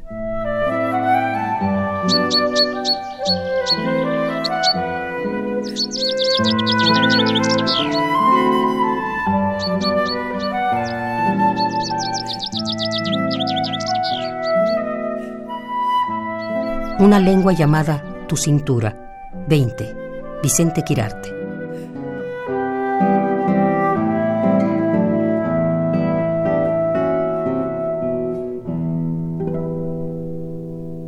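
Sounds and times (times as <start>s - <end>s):
steady sustained instrumental music: 0.0s - 31.0s
birds chirping and singing in a small courtyard of orange trees: 1.0s - 21.3s
speech: 2.1s - 5.0s, 5.6s - 8.6s, 17.0s - 21.3s.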